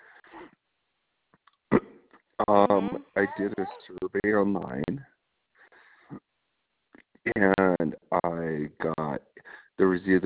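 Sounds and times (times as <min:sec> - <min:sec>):
caller hiccuping during a phone call: 0:01.7 - 0:03.6
speech: 0:02.4 - 0:05.1, 0:07.3 - 0:09.0, 0:10.0 - 0:10.2
softer breathy sound: 0:05.6 - 0:06.3, 0:09.4 - 0:09.8.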